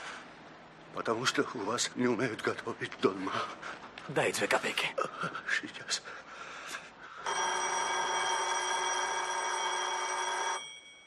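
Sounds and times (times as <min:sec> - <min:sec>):
speech: 0:01.0 - 0:06.5
telephone bell ringing in an apartment: 0:07.2 - 0:11.0.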